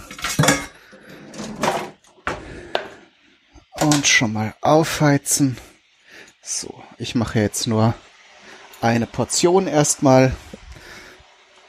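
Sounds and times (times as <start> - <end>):
large cooking pot being pulled out of a kitchen cupboard: 0.0 - 2.0
speech: 3.8 - 5.7, 6.4 - 8.1, 8.8 - 10.5.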